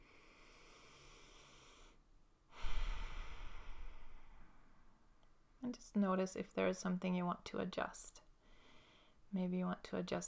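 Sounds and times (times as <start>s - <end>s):
long deep breath taken during a relaxation exercise: 0.0s - 5.0s, 8.4s - 9.2s
speech: 5.7s - 8.2s, 9.3s - 10.2s.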